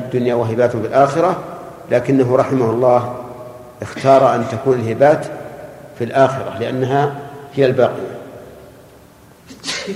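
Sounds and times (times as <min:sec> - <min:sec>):
quiet hum: 0:00.0 - 0:09.9
speech: 0:00.1 - 0:03.2, 0:03.8 - 0:05.4, 0:06.0 - 0:08.1
person sneezing: 0:09.5 - 0:09.9.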